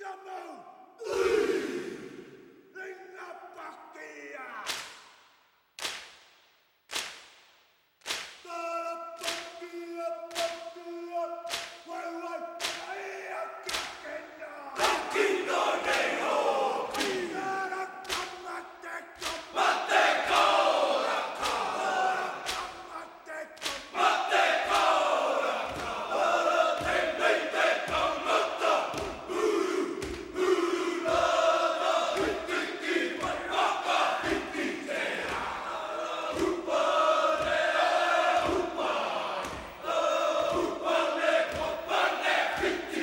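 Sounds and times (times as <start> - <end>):
stadium crowd roaring: 1.0 - 2.4, 19.5 - 22.7, 24.0 - 43.0
sharp slaps and stamps: 4.6 - 5.2, 5.8 - 10.8, 11.5 - 12.0, 12.6 - 13.0, 13.6 - 14.0, 14.8 - 17.3, 18.0 - 18.4, 19.2 - 22.8, 23.6 - 30.4, 36.2 - 39.9, 40.5 - 42.9
group of men shouting and chanting haka war chant: 8.5 - 43.0.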